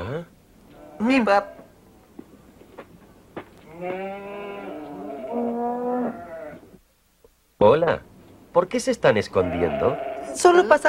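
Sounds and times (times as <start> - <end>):
speech: 1.0 - 1.6, 3.8 - 4.5, 7.6 - 10.8
cow mooing: 3.7 - 6.7, 9.4 - 10.5.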